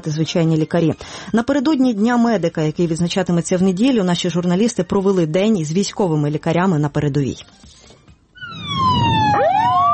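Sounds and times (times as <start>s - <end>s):
speech: 0.0s - 7.8s
ambulance siren wailing with a second rising sweep: 8.4s - 9.9s.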